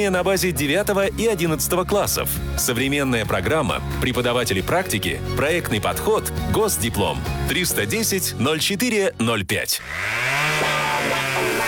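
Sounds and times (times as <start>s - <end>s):
speech: 0.0s - 11.3s
chainsaw engine revving: 9.8s - 11.6s.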